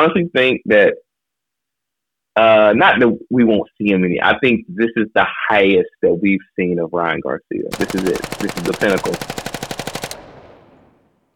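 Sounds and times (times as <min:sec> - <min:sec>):
speech: 0:00.0 - 0:01.0, 0:02.4 - 0:09.5
machine gun burst: 0:07.7 - 0:11.2.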